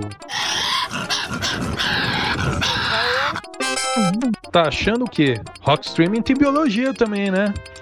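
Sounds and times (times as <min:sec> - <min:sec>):
speech: 0:00.0 - 0:00.3, 0:04.5 - 0:07.7
Tasmanian devil grunting and screeching: 0:00.3 - 0:04.0
tonal warbling sound: 0:03.5 - 0:04.5.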